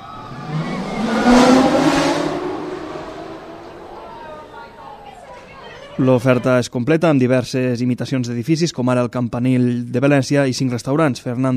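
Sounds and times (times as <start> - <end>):
vertical accelerator roller coaster launch roar in Europe: 0.0 - 5.8
speech: 6.0 - 11.5.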